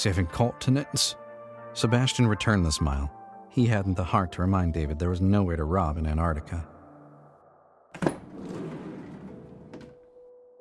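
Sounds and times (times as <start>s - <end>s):
speech: 0.0s - 1.2s, 1.8s - 6.7s
heavy van side door sliding open along its track: 8.0s - 10.0s.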